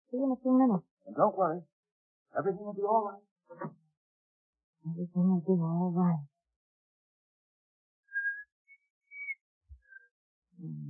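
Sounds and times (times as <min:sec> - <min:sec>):
speech: 0:00.1 - 0:03.8, 0:04.8 - 0:06.3
person attempting to whistle: 0:08.1 - 0:10.1.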